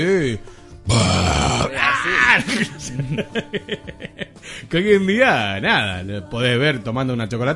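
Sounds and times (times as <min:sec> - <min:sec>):
speech: 0:00.0 - 0:07.5
person imitating a growling video game alien: 0:00.9 - 0:02.7
laughter: 0:02.2 - 0:04.4.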